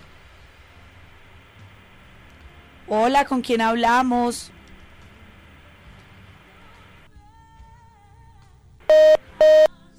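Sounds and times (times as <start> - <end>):
speech: 2.9 - 4.6
phone line beeps after a call drops: 8.9 - 9.7.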